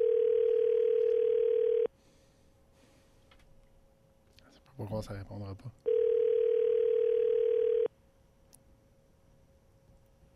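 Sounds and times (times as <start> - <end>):
telephone dial tone: 0.0 - 1.9, 5.9 - 7.9
speech: 4.8 - 5.9.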